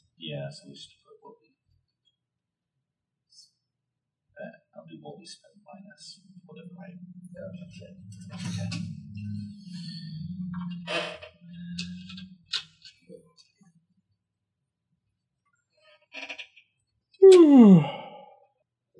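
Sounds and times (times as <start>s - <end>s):
speech: 0.2s - 1.0s, 4.4s - 12.3s, 17.3s - 18.0s
people yawning: 17.2s - 18.4s.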